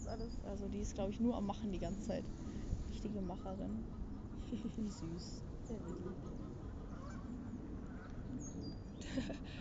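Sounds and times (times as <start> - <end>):
speech: 0.1 - 6.4, 9.1 - 9.5
flock of ducks quacking: 3.1 - 8.1
laughter: 4.3 - 5.3, 9.0 - 9.5
duck squawk: 5.8 - 8.1.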